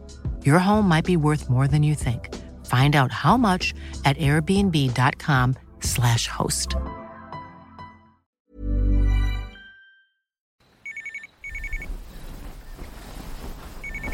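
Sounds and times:
speech: 0.4s - 7.0s
telephone ringing in short double bursts: 10.8s - 11.8s.

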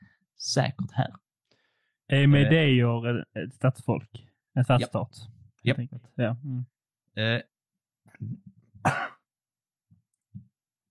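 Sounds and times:
speech: 0.4s - 1.2s, 2.1s - 7.5s, 8.2s - 9.1s
person coughing: 8.8s - 9.3s.

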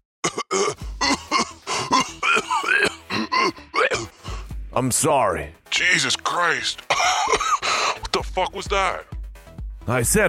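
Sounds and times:
man coughing after being choked: 0.2s - 4.2s, 6.9s - 8.6s
man gasping: 0.8s - 2.2s, 4.0s - 4.6s, 7.4s - 8.1s
speech: 4.8s - 7.4s, 8.3s - 9.1s, 9.8s - 10.2s.

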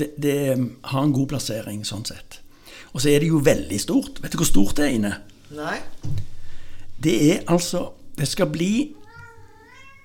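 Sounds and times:
speech: 0.0s - 6.3s, 7.0s - 9.0s
cat meowing: 8.9s - 10.0s.

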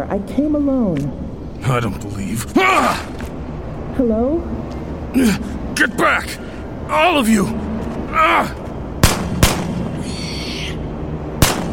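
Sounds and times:
speech: 0.1s - 3.4s, 4.0s - 8.6s
loud sharp gunshots: 9.0s - 10.0s, 11.4s - 11.7s.

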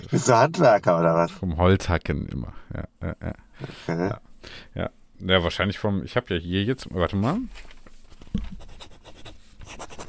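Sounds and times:
speech: 0.1s - 8.6s
laughter: 2.7s - 4.2s
fountain pen writing on paper: 8.4s - 10.0s.

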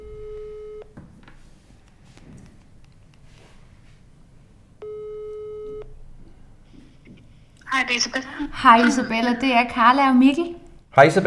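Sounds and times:
telephone ringback tone while a call connects: 0.0s - 0.9s
speech: 7.8s - 11.2s.

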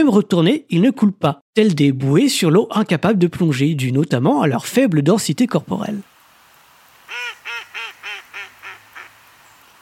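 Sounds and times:
speech: 0.0s - 6.1s
mallard duck quacking: 7.1s - 9.1s.

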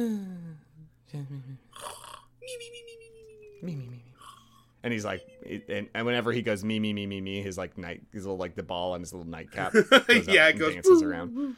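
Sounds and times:
speech: 0.0s - 0.4s, 1.1s - 4.0s, 4.8s - 11.5s
voice imitating exaggerated cartoon snoring: 1.7s - 2.4s.

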